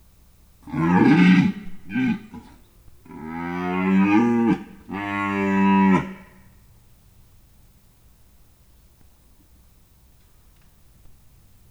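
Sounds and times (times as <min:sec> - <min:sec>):
red deer at a zoo in Budakeszi: 0:00.6 - 0:06.4.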